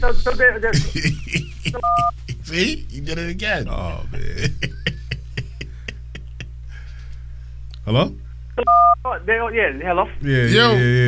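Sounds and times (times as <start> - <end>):
speech: 0.0 - 4.9, 7.9 - 11.0
laughter: 0.7 - 2.6, 4.1 - 6.6
loud dual-tone phone keypad beep: 1.8 - 2.2, 8.6 - 9.0.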